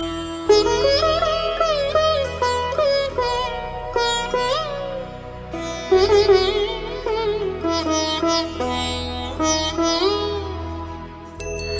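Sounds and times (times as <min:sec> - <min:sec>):
Arabic traditional music: 0:00.0 - 0:11.7.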